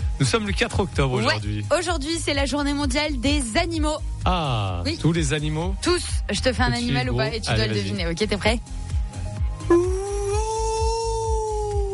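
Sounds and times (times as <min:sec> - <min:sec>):
speech: 0:00.2 - 0:08.8
person imitating a whale call: 0:09.6 - 0:11.9.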